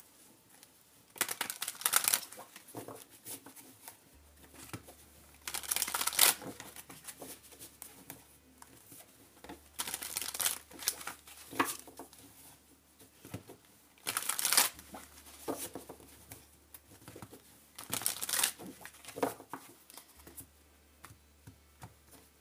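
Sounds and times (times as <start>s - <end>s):
tarot cards being shuffled: 1.2s - 12.3s, 13.2s - 20.5s.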